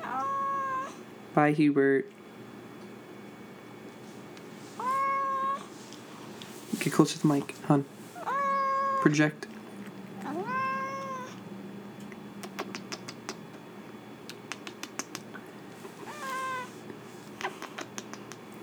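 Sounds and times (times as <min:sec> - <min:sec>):
cat meowing: 0:00.0 - 0:01.0, 0:04.8 - 0:05.7, 0:08.2 - 0:09.1, 0:10.2 - 0:11.4, 0:15.8 - 0:16.8
speech: 0:01.4 - 0:02.2, 0:06.8 - 0:08.0, 0:09.0 - 0:09.5.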